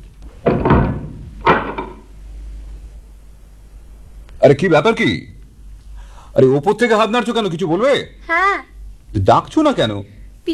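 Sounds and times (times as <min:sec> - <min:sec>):
door being shut downstairs in a house: 0:00.3 - 0:02.1
speech: 0:04.4 - 0:05.3, 0:06.4 - 0:10.5.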